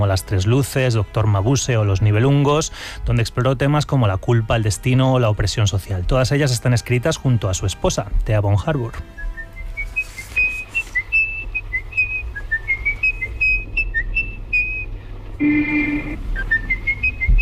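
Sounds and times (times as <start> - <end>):
speech: 0.0 - 9.3
low rumbling hum: 0.0 - 17.4
person whistling a slow eerie film melody: 9.1 - 17.4
louder harsh tone: 15.4 - 16.2.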